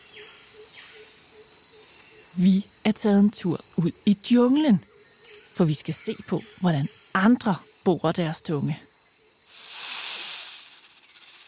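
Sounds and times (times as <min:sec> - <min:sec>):
speech: 0:02.4 - 0:04.9, 0:05.6 - 0:08.9
snake hissing in the jungle: 0:09.4 - 0:11.4.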